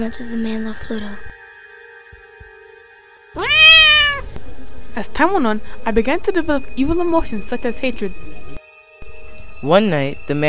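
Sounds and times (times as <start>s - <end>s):
speech: 0.0s - 1.3s, 5.0s - 8.4s, 9.6s - 10.4s
cat meowing: 3.4s - 4.3s.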